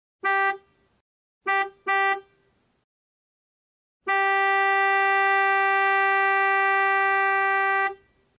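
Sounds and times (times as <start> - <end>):
car horn: 0.2 - 0.8, 1.4 - 2.5, 4.0 - 8.2.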